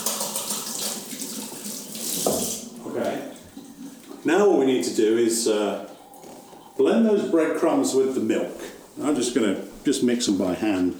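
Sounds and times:
tap water running over hands being washed while cooking: 0.0s - 4.3s
speech: 4.2s - 6.0s, 6.8s - 10.9s.

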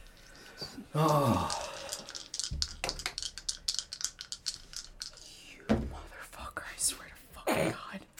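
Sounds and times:
speech: 0.9s - 1.6s
dice rolling across a hard tabletop during a game: 1.5s - 5.2s.

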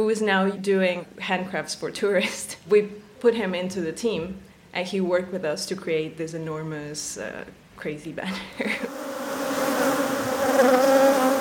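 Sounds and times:
speech: 0.0s - 9.0s
swarm of honeybees buzzing: 8.6s - 11.3s.

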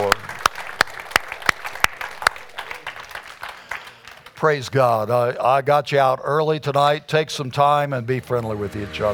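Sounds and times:
sharp evenly spaced claps: 0.0s - 4.4s
audience applauding at an evening church service: 0.0s - 4.5s
speech: 4.4s - 9.1s.

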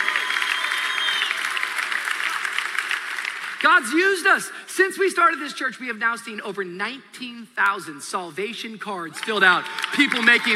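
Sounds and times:
whoops: 0.0s - 1.7s, 9.2s - 10.5s
large church audience clapping and cheering: 0.0s - 4.6s, 9.1s - 10.5s
speech: 3.6s - 10.5s.

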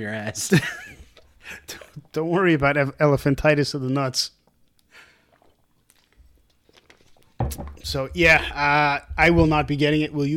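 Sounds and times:
speech: 0.0s - 4.4s, 7.9s - 10.3s
people sipping water with slurps and swallowing: 0.9s - 2.2s, 4.4s - 7.8s.

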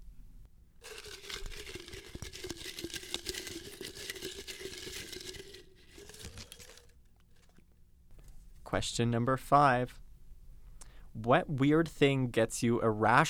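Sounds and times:
paper question slips being shuffled by hand: 0.8s - 7.6s
speech: 8.7s - 10.0s, 11.2s - 13.2s.

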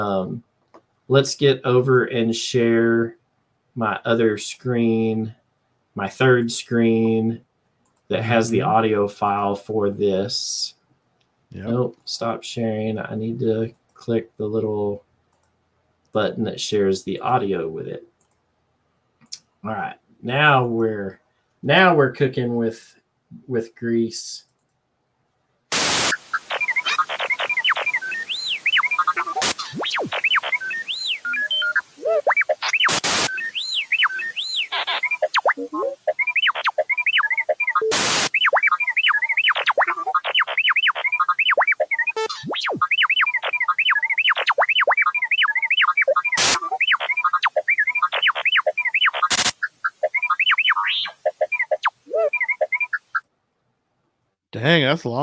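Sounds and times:
speech: 0.0s - 0.5s, 1.1s - 3.2s, 3.8s - 5.4s, 6.0s - 7.5s, 8.1s - 10.8s, 11.5s - 15.0s, 16.1s - 18.1s, 19.6s - 24.5s, 54.6s - 55.2s
steady hiss: 25.7s - 26.4s
sharp bursts of loud static: 25.7s - 53.2s
warbling robotic beeps and chirpy electronic whistles: 25.9s - 53.2s.

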